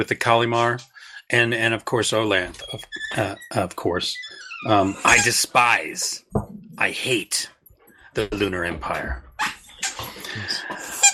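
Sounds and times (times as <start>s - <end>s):
speech: 0.0s - 7.6s, 8.2s - 9.5s
dogs' squeaky toys squeaking: 2.6s - 5.6s, 9.4s - 11.1s.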